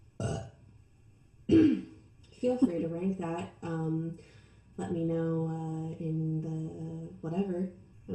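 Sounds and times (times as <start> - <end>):
person burping: 0.2 - 0.5, 1.5 - 1.9
speech: 2.4 - 8.1.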